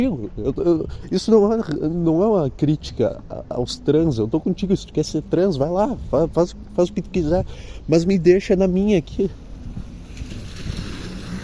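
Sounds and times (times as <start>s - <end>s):
speech: 0.0s - 9.4s
low rumbling road noise: 0.0s - 11.4s
car tires splashing through a puddle on an asphalt road: 9.8s - 11.4s.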